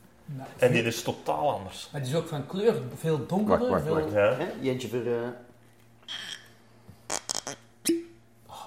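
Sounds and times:
faint steady hum: 0.0 - 8.6
speech: 0.3 - 5.5, 6.1 - 6.4
cork creaking while worked loose from a wine bottle: 6.0 - 8.0
wine bottle cork popping: 7.1 - 8.1.

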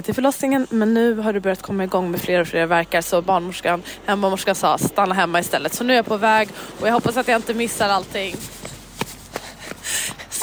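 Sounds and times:
speech: 0.0 - 8.6
person running footsteps: 6.0 - 10.4
hissy breath or wind noise: 9.3 - 10.4.

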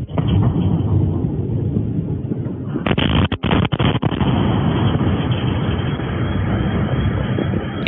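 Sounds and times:
distant explosion of bomb dropped by a plane over Kharkiv Ukraine: 0.0 - 7.8.

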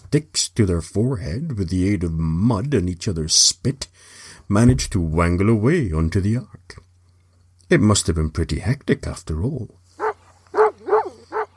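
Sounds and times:
speech: 0.1 - 6.8, 7.7 - 9.8
steady low hum: 4.6 - 5.9
dog barking outside: 10.0 - 11.5.

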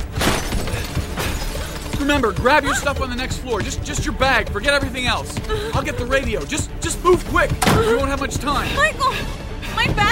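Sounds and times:
glass shattering: 0.1 - 2.8
scattered tinkling glass debris: 0.2 - 2.7
speech: 2.2 - 10.1.

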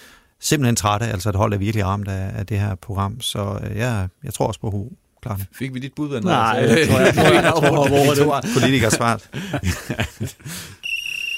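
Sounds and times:
speech: 0.4 - 10.8
laughter: 6.2 - 10.7
pea referee whistle trilling: 10.8 - 11.3.

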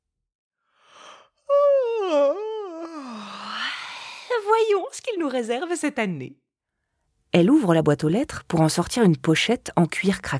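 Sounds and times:
loud drawn-out yawn from a female elf: 0.8 - 4.6
speech: 4.6 - 6.4, 7.3 - 10.3.

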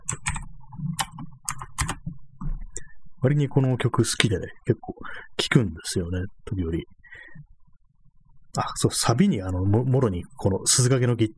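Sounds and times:
typing on a computer keyboard: 0.0 - 2.1
low hum: 0.0 - 11.3
speech: 3.2 - 7.5, 8.5 - 11.3.

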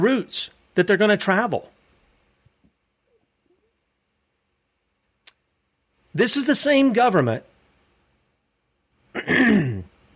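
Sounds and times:
speech: 0.0 - 1.8, 6.2 - 7.5
person clearing throat: 9.1 - 10.0.

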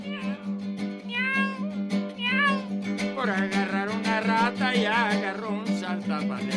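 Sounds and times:
cat meowing: 0.0 - 2.8
speech: 3.2 - 3.9, 4.5 - 6.5.

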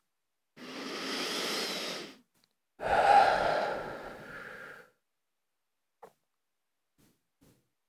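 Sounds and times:
deep breath with long inhale and slower exhale: 0.6 - 2.2, 2.8 - 5.0.

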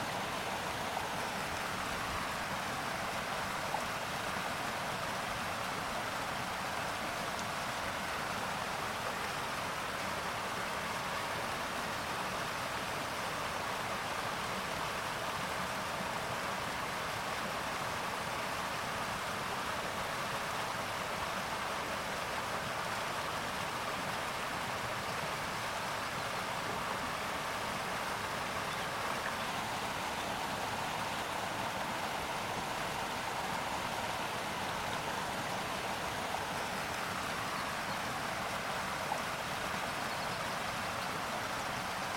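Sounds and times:
flowing river in a forest: 0.0 - 42.1
tropical birds singing in a forest: 28.6 - 31.0, 40.0 - 40.6.

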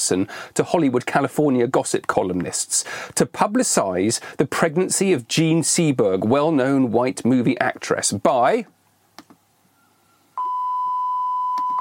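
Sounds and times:
speech: 0.1 - 8.8
censor bleep tone over a spoken word: 9.8 - 11.7.

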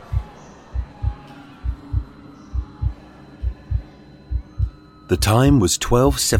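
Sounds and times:
pounding heartbeat sound effect: 0.0 - 4.8
faint hum: 0.0 - 6.3
speech: 5.1 - 6.3.

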